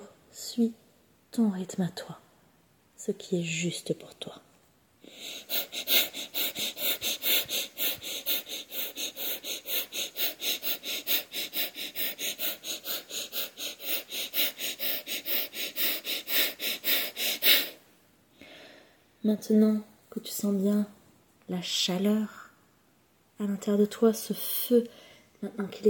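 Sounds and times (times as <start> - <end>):
speech: 0.6 - 0.8, 1.4 - 2.2, 3.0 - 4.5, 5.2 - 6.0, 19.2 - 22.4, 23.4 - 25.8
rapid forceful breaths of a guided breathing exercise: 5.0 - 19.0.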